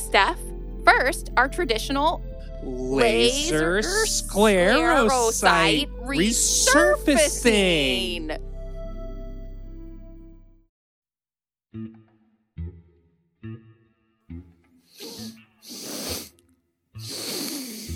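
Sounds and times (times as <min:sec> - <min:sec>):
sustained tone: 0:00.0 - 0:10.6
speech: 0:00.1 - 0:08.4
person sniffing: 0:14.9 - 0:16.4, 0:17.0 - 0:17.9.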